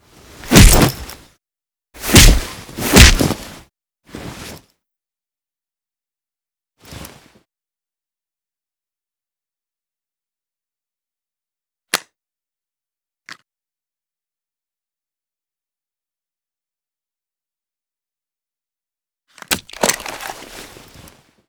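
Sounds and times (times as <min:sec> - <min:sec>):
person being beaten during an assault: 0:00.5 - 0:01.0, 0:02.0 - 0:03.4.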